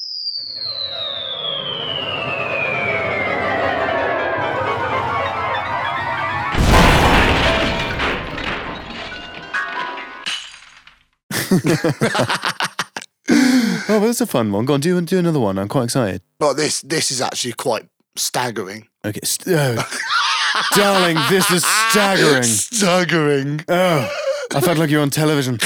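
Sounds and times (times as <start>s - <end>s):
long falling whistle tone of a piano crashing down sound effect: 0.0s - 7.1s
speech: 0.4s - 1.0s, 11.6s - 12.7s, 13.9s - 25.6s
rapid rattling impacts: 3.2s - 9.5s
loud booming crash of a piano with clattering debris: 4.4s - 10.3s
laughter: 11.3s - 14.0s, 19.6s - 25.0s.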